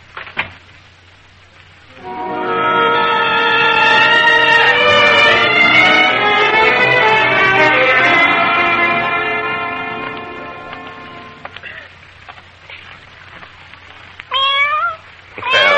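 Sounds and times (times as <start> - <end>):
long ringing tone: 1.9 - 11.4
cat meowing: 14.3 - 15.7.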